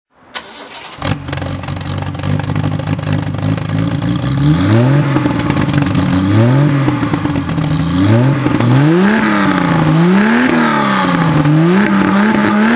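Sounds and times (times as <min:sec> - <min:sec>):
Triumph TR6 PI rally car engine revving: 0:00.4 - 0:12.7.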